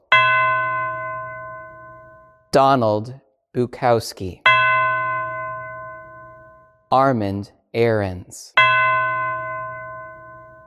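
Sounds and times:
single deep church bell tolling: 0.0 - 2.5, 4.4 - 6.9, 8.6 - 10.6
speech: 2.5 - 4.4, 6.9 - 8.8.

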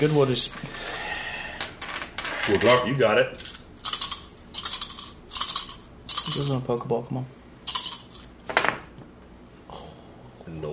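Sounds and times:
speech: 0.0 - 1.0, 2.4 - 3.5, 6.3 - 7.4, 10.5 - 10.7
dice rolling on a hard tabletop: 1.6 - 6.6.

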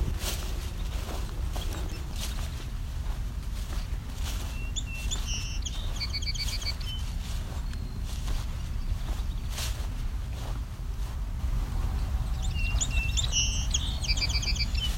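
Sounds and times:
constant low outdoor rumble: 0.0 - 14.9
red-winged blackbird singing short buzzy trilled phrases: 0.6 - 2.7, 3.6 - 10.0, 11.9 - 14.9.

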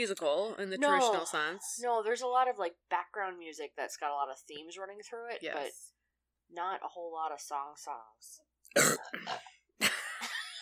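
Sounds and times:
speech: 0.0 - 9.5
two people burping limoncello-flavored burps: 8.7 - 9.6.

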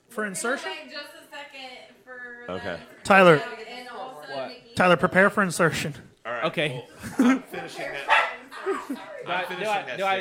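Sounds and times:
speech: 0.2 - 3.6, 4.3 - 8.1, 8.9 - 10.1
dog barking in short sharp hoarse yaps: 8.0 - 8.4.

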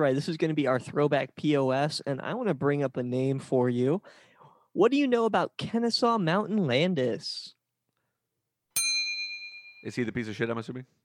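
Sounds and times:
speech: 0.0 - 7.6, 9.8 - 11.0
bright metallic bell ding: 8.8 - 10.1.

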